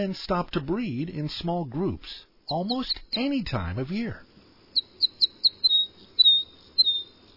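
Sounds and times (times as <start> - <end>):
speech: 0.0 - 4.3
crossbill calls: 2.5 - 3.3, 4.7 - 7.2.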